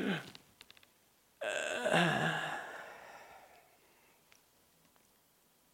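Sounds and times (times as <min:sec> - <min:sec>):
person imitating labored asthma attack breathing: 0:02.0 - 0:04.2.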